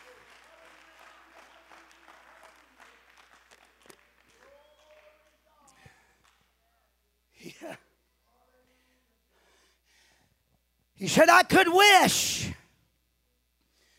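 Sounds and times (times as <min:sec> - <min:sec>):
crowd applauding: 0:00.0 - 0:06.5
speech: 0:11.0 - 0:12.5.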